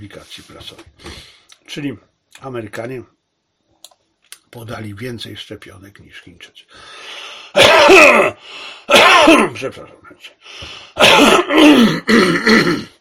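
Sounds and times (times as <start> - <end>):
speech: 0.0 - 1.2, 1.8 - 3.2, 4.5 - 7.0, 7.6 - 12.9
person coughing: 7.5 - 9.6, 10.9 - 12.9
person clearing throat: 7.6 - 9.6, 11.0 - 12.9.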